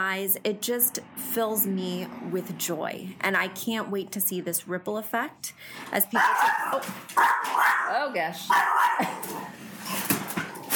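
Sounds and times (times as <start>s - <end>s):
speech: 0.0s - 10.1s
dog barking in sharp agitated bursts at a mail carrier: 6.1s - 9.3s.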